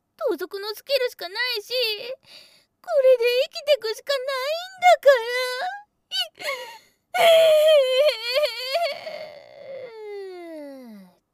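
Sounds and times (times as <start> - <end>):
speech: 0.3 - 9.4
person crying with gasping sobs, wailing and whimpering: 5.2 - 11.1.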